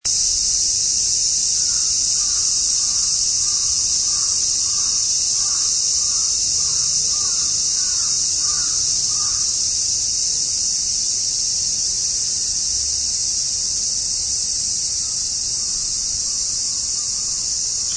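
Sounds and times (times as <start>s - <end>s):
cicada: 0.0s - 17.9s.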